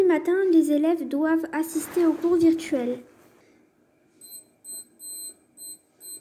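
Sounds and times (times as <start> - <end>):
speech: 0.1 - 3.1
alarm clock ringing with high electronic beeping: 4.2 - 6.1.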